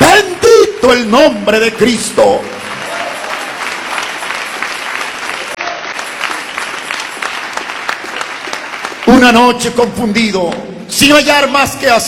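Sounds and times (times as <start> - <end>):
speech: 0.8 - 2.6, 9.2 - 12.0
audience applauding in praise: 2.2 - 9.4.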